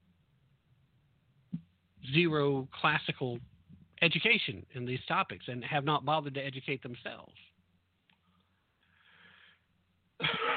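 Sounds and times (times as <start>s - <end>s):
speech: 2.1s - 7.5s
soft breathy intake of air: 8.8s - 9.7s
single loud cough: 10.2s - 10.5s.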